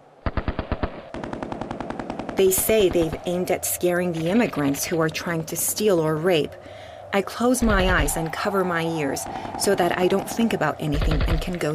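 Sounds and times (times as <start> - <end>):
automatic gunfire at night in Mogadishu: 0.2 - 3.2
speech: 2.4 - 11.7.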